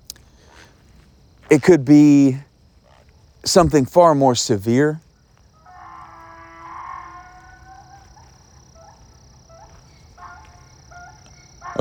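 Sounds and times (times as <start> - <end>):
speech: 1.5 - 2.5, 3.4 - 5.0
donkey braying outdoors near a lake: 4.7 - 11.7.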